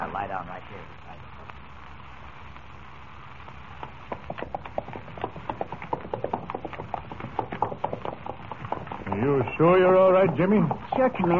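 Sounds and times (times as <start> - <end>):
speech: 0.0 - 1.4, 9.2 - 11.3
horse hooves clip-clopping: 3.8 - 11.3.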